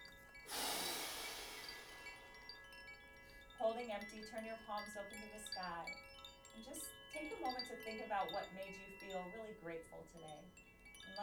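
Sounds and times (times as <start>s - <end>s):
powerful exhale in a guided breathing exercise: 0.5s - 2.3s
speech: 3.7s - 11.2s.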